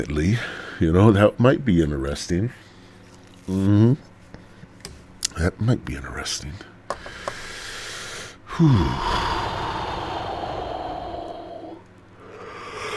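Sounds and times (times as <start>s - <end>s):
speech: 0.0s - 2.7s, 3.5s - 4.1s, 5.4s - 6.7s, 8.6s - 9.2s
long yawn with voiced groan and breathy exhale: 8.5s - 11.8s, 12.4s - 12.9s.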